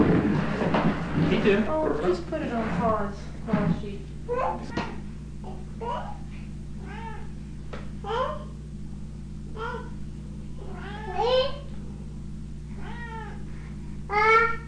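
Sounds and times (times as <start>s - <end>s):
steady low hum: 0.0s - 14.6s
speech: 1.3s - 4.9s
cat meowing: 12.8s - 13.4s.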